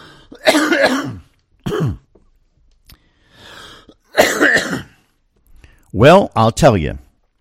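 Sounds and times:
raspy breath between coughs: 0.0 - 0.4, 2.9 - 4.1
person coughing harshly: 0.3 - 2.1, 4.1 - 5.0
speech: 6.0 - 7.0.

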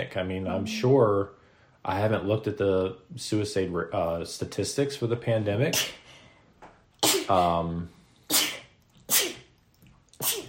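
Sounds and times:
speech: 0.0 - 6.0, 7.1 - 8.0
short voiced sound: 0.5 - 1.2
person sneezing: 7.0 - 7.6, 8.3 - 9.5, 10.2 - 10.4.

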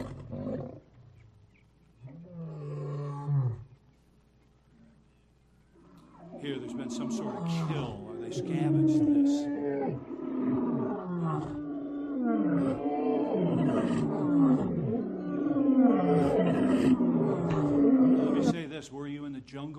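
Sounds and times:
lion roaring: 0.0 - 1.1, 2.0 - 3.7, 5.8 - 18.6
speech: 6.4 - 10.1.

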